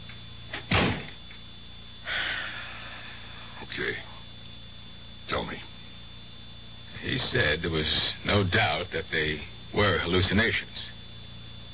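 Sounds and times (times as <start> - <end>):
door shutting with a solid thud: 0.5 - 1.2
speech: 7.2 - 11.0.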